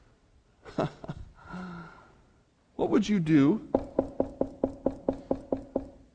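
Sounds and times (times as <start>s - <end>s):
speech: 0.8s - 1.1s, 2.8s - 3.8s
sharp hollow knocking on a door: 3.7s - 6.0s.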